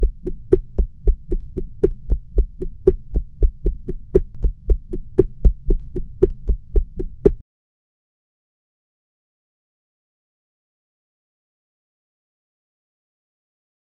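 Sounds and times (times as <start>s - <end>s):
rhythmic shushing: 0.0s - 7.4s.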